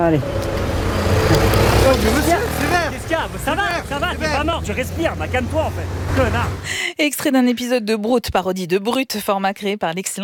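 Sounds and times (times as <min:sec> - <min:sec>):
speech: 0:00.0 - 0:00.5, 0:01.3 - 0:10.2
cars passing on a street and running a red light: 0:00.0 - 0:06.8.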